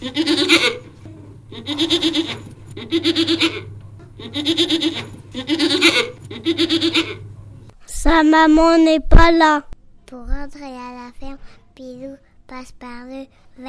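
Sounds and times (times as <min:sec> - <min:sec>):
speech: 0:00.0 - 0:00.7, 0:08.3 - 0:09.7, 0:12.5 - 0:13.6
goats bleating: 0:00.0 - 0:00.9, 0:01.5 - 0:07.2.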